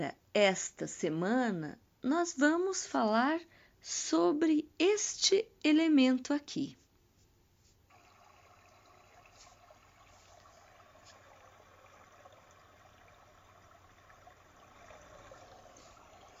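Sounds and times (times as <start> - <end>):
speech: 0.0 - 6.8
running water trickling: 7.9 - 16.3.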